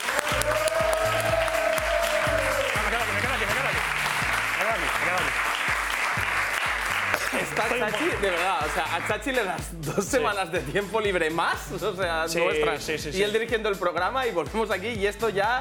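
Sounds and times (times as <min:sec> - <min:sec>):
audience applause: 0:00.0 - 0:09.2
audience voices and cheers: 0:00.0 - 0:09.2
speech: 0:07.6 - 0:15.5.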